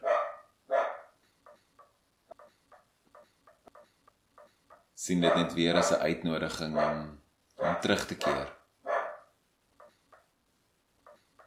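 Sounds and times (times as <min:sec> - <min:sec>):
loud dog barks outside: 0:00.0 - 0:01.2, 0:05.2 - 0:06.0, 0:06.7 - 0:09.4
fainter shorter dog barks from farther off outside: 0:00.0 - 0:02.9, 0:03.7 - 0:06.0, 0:06.6 - 0:10.0
speech: 0:05.0 - 0:07.2, 0:07.8 - 0:08.6.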